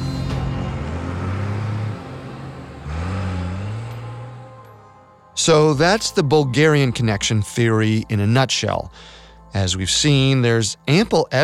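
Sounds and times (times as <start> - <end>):
getaway truck engine revving as it accelerates away leaving Rome: 0.0 - 8.1
speech: 5.5 - 11.4.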